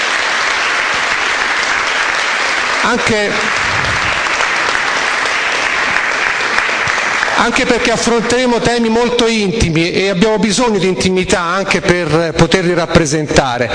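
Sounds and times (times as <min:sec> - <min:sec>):
large audience applause: 0:00.0 - 0:08.3
speech: 0:02.8 - 0:03.7, 0:07.4 - 0:13.7.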